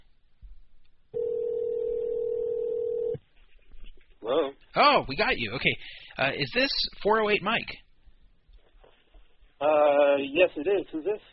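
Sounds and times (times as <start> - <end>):
ringback tone from an outgoing phone call: 1.2 - 3.2
speech: 4.3 - 7.8, 9.6 - 11.3.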